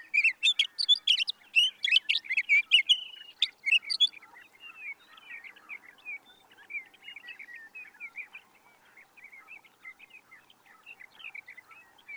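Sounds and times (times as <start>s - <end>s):
sage thrasher chirps: 0.0s - 4.1s.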